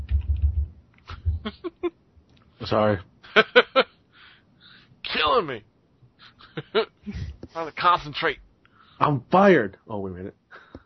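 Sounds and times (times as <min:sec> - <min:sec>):
rapid typing on a computer keyboard: 0:00.0 - 0:00.7
speech: 0:01.4 - 0:01.9, 0:02.6 - 0:03.9, 0:05.4 - 0:05.7, 0:06.7 - 0:10.4.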